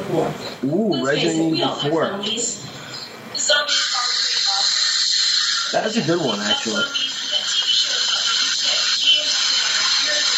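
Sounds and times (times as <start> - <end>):
speech: 0.1 - 2.9, 3.5 - 3.9, 5.7 - 7.1
coffee machine hissing steam: 3.7 - 10.3.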